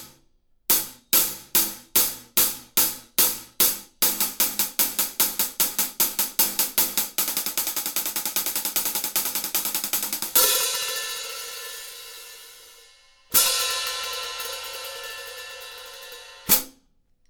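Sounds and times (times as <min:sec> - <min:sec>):
14-inch Classic hi-hat cymbals: 0:00.8 - 0:16.8.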